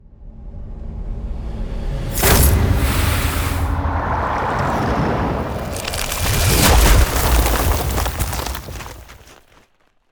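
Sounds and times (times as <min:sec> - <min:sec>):
ice spell barrier defense frozen dome sound effect: 0:02.1 - 0:09.4.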